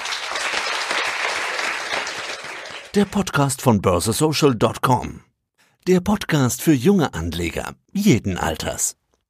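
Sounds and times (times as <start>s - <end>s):
class of students applauding: 0.0s - 3.4s
speech: 2.9s - 9.0s.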